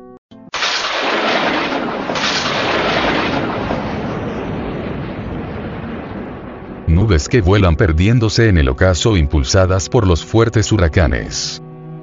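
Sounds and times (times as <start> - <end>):
thunder crack and rumble: 0.6 - 8.9
speech: 7.1 - 11.6.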